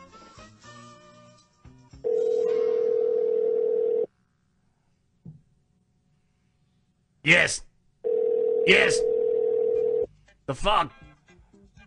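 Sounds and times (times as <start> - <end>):
telephone ringing tone during a phone call: 2.0 - 4.1, 8.0 - 10.1
speech: 7.3 - 7.7, 8.7 - 9.1, 10.5 - 11.0.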